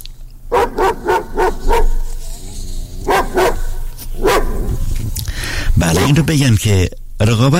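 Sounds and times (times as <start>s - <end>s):
low rumble: 0.0s - 7.5s
herding dog barking: 0.5s - 5.0s, 5.9s - 6.4s
speech: 6.1s - 7.5s.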